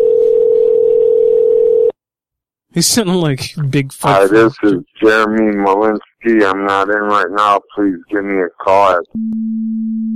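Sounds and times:
telephone dial tone while calling voicemail: 0.0 - 1.9
speech: 2.8 - 10.1.

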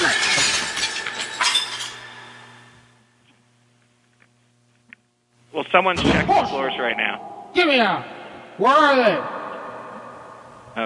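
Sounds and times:
glass soda bottles shattering inside an elevator: 0.0 - 2.3
speech: 5.7 - 9.4.

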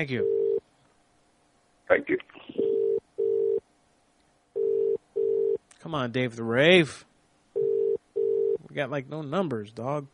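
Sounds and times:
speech: 0.0 - 0.4, 1.9 - 2.8, 5.8 - 7.1, 8.7 - 10.1
telephone ringing tone: 0.2 - 0.6, 2.6 - 3.6, 4.6 - 5.6, 7.6 - 8.6.

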